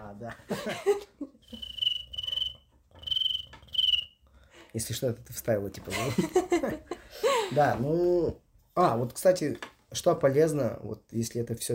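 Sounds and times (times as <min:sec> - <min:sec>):
speech: 0:00.2 - 0:01.1, 0:04.7 - 0:11.7
person imitating cricket chirps: 0:01.6 - 0:04.0.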